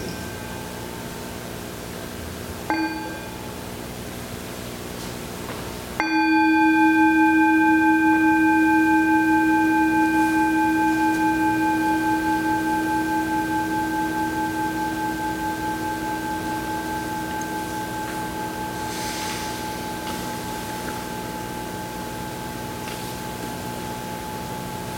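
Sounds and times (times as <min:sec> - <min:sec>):
singing bell struck at a worship service: 0:00.0 - 0:01.3, 0:02.7 - 0:03.5, 0:06.0 - 0:22.4.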